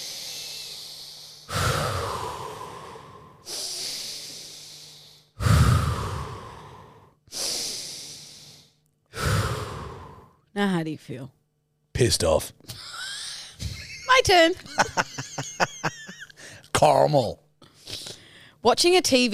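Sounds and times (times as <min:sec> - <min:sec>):
person taking deep slow breaths: 0:00.0 - 0:10.4, 0:17.6 - 0:18.6
speech: 0:10.6 - 0:11.4, 0:12.0 - 0:12.9, 0:14.2 - 0:15.7, 0:16.8 - 0:17.4, 0:18.6 - 0:19.3
laughter: 0:14.6 - 0:16.3.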